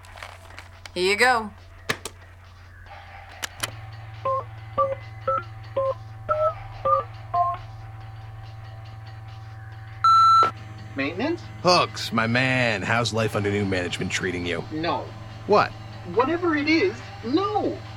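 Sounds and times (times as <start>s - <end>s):
low hum: 0.0s - 17.9s
speech: 1.0s - 1.6s, 11.0s - 17.9s
clicks: 3.3s - 3.8s
long steady phone tone: 10.0s - 10.5s.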